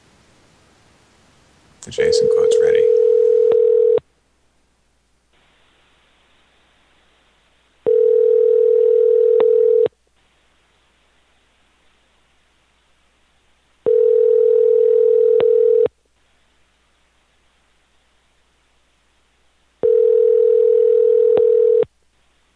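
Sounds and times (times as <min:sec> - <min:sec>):
speech: 0:01.8 - 0:03.1
telephone ringing tone on an outgoing call: 0:02.1 - 0:04.0, 0:07.8 - 0:09.9, 0:13.8 - 0:15.9, 0:19.8 - 0:21.9.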